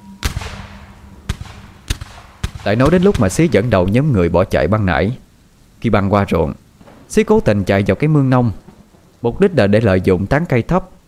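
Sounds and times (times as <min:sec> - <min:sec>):
gunshots fired in anger: 0:00.2 - 0:04.0
speech: 0:02.6 - 0:05.2, 0:05.8 - 0:08.6, 0:09.2 - 0:11.0.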